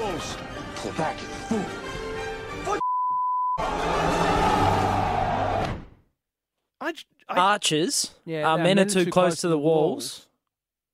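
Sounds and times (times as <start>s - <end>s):
dramatic film dialogue with voices: 0.0s - 10.4s
speech: 0.3s - 1.9s, 6.9s - 10.3s
pure censor beep over a film line: 2.8s - 3.6s.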